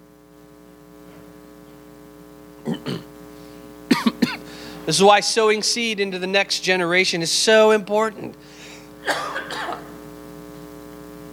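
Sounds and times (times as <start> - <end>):
faint hum of a large room: 0.0 - 11.3
person coughing: 2.6 - 3.1, 3.9 - 4.6, 9.0 - 10.0
speech: 4.9 - 8.5.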